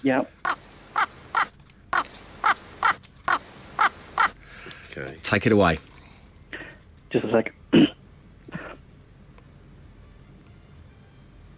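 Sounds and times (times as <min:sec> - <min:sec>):
speech: 0:00.0 - 0:00.6, 0:05.0 - 0:05.9, 0:07.1 - 0:07.8
raven cawing: 0:00.4 - 0:04.6.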